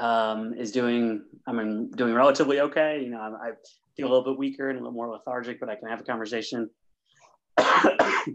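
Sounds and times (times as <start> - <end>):
speech: 0.0 - 6.8, 7.6 - 8.3
harsh coughing: 7.6 - 8.3.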